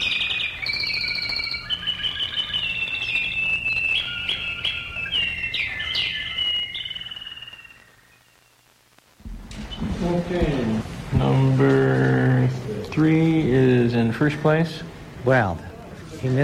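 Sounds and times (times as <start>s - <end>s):
songbird singing a varied song: 0.0s - 8.7s, 9.3s - 12.4s
low steady hum: 7.1s - 16.0s
speech: 14.0s - 16.4s.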